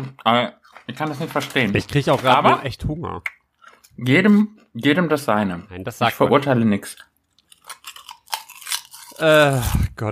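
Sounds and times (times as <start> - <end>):
speech: 0.0 - 3.4, 4.0 - 7.1, 9.2 - 10.1
person chewing crisp food: 0.6 - 1.5, 6.8 - 9.9.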